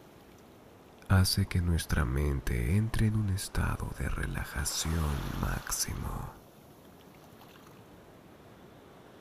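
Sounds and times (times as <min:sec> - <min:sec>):
speech: 0:01.1 - 0:06.4
ocean surf hissing: 0:04.4 - 0:06.4.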